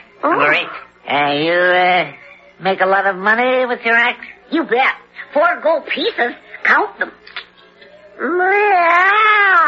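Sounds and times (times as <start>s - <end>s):
speech: 0.2s - 7.5s, 8.2s - 9.6s
human voice imitating a cat meowing: 8.2s - 9.6s.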